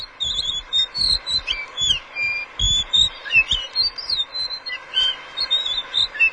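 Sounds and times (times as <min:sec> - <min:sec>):
blue whistling thrush singing: 0:00.0 - 0:06.3.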